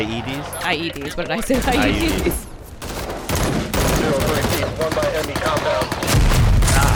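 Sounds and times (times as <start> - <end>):
speech: 0.0 - 2.5
dense gunfire in a firefight after a Humvee convoy ambush: 1.7 - 6.9.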